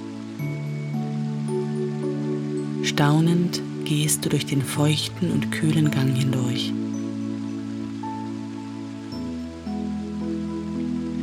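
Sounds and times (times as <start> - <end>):
low sustained musical drone: 0.0 - 11.2
waterfall rushing: 0.0 - 11.2
speech: 2.8 - 6.8.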